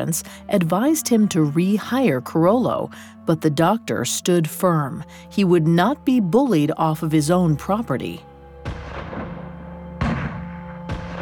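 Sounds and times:
speech: 0.0 - 8.8
loud gunshots with rolling decay: 8.8 - 11.2.

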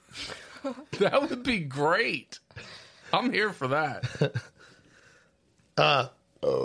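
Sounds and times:
speech: 0.6 - 2.4, 3.1 - 4.6, 5.8 - 6.6
loud throaty burp: 5.8 - 6.6.

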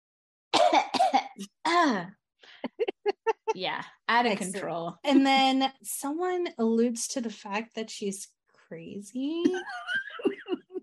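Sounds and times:
person imitating coughing: 0.6 - 1.9
speech: 1.4 - 2.2, 3.6 - 10.1
laughter: 2.6 - 3.6, 9.4 - 10.8.

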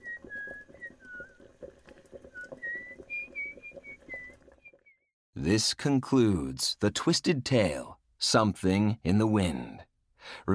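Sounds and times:
woman whistling a melody: 0.0 - 1.5, 2.3 - 5.1
pot with liver boiling, low bubbling and rumbling: 0.0 - 5.0
speech: 5.4 - 10.5.

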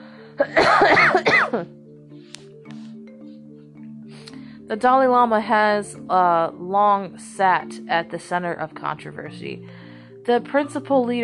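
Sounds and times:
harsh coughing fit: 0.4 - 1.8
speech: 0.4 - 1.8, 4.7 - 11.2.

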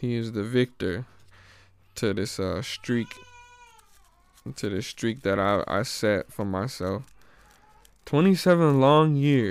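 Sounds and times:
speech: 0.0 - 1.2, 2.0 - 3.3, 4.4 - 7.2, 8.1 - 9.4
baby boy wailing: 2.5 - 4.5.

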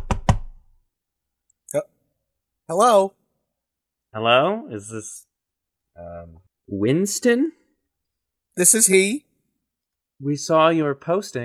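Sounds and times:
firm knocking on a door: 0.0 - 0.7
speech: 1.7 - 2.0, 2.7 - 3.2, 4.1 - 5.3, 6.0 - 7.6, 8.6 - 9.3, 10.2 - 11.4.

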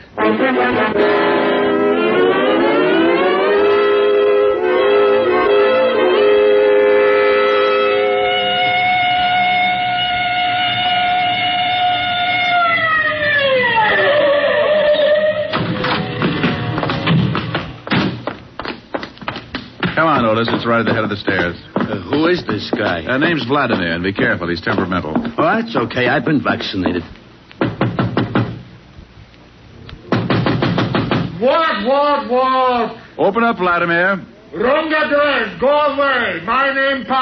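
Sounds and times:
speech: 0.4 - 1.2, 20.4 - 27.1, 31.9 - 37.1
police car siren wailing: 2.1 - 17.0
clattering knocks: 15.6 - 25.5, 27.6 - 28.6, 30.1 - 31.4.

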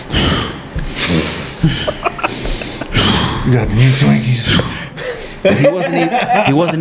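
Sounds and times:
voice imitating a man's heavy breathing: 0.0 - 3.5
laughter: 1.5 - 3.1, 5.0 - 6.7
speech: 3.5 - 4.7, 5.4 - 6.7.

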